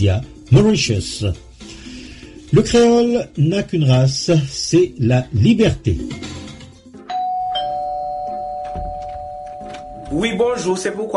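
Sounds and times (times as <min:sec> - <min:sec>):
speech: 0:00.0 - 0:01.8, 0:02.5 - 0:06.3, 0:10.1 - 0:11.1
electronic doorbell chime at a home's front door: 0:07.1 - 0:10.8.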